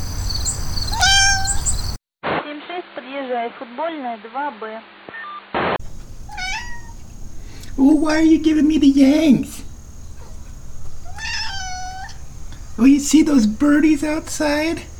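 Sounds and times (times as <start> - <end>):
cat meowing: 0.9 - 1.8, 6.2 - 7.0, 11.0 - 12.2
speech: 3.3 - 5.2, 7.8 - 9.6, 12.8 - 14.9.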